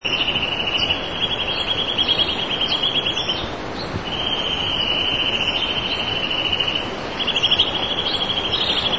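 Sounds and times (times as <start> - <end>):
sparrows chirping: 0.0 - 8.9.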